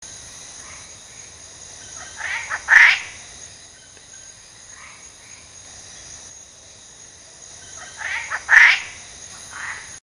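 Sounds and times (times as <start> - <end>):
Hyla lanciformis calling: 1.8 - 4.0, 7.6 - 10.0.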